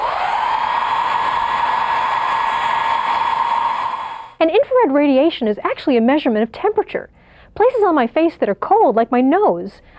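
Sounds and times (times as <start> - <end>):
blow dryer running: 0.0 - 4.4
speech: 4.4 - 9.9.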